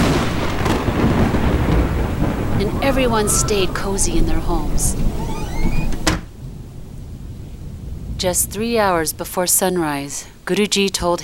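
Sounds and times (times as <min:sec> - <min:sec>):
thunder rumbling in a storm: 0:00.0 - 0:11.2
speech: 0:02.8 - 0:05.0, 0:08.2 - 0:11.2.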